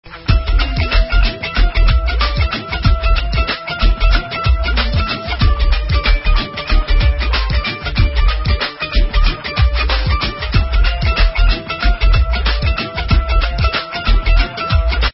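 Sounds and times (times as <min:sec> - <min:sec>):
tumbi and dhol message ringtone: 0:00.1 - 0:15.1.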